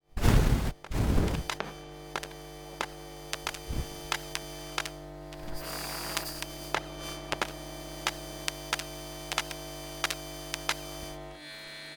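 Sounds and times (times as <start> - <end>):
long buzzing soft popping power glitch: 0.2 - 10.8.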